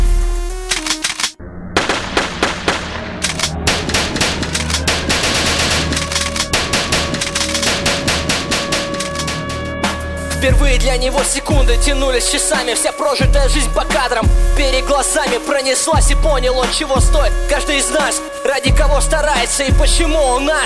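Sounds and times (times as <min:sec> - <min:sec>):
sharp individual gunshots: 0:00.5 - 0:09.4
automatic gunfire on the 23rd floor of a skyscraper: 0:00.7 - 0:09.3
speech: 0:10.4 - 0:20.6.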